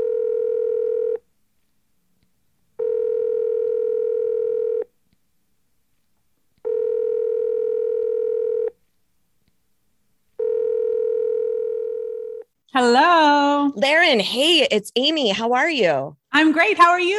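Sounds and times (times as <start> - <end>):
telephone line tone: 0.0 - 1.2, 2.8 - 4.9, 6.7 - 8.8, 10.4 - 12.5
speech: 13.7 - 17.1.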